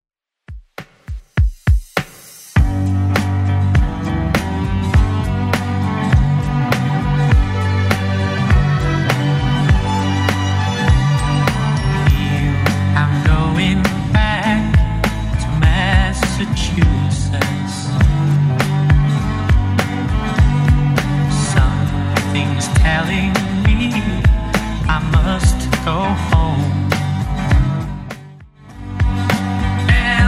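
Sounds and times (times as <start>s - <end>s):
60s drum loop at 101 bpm: 0.5s - 30.2s.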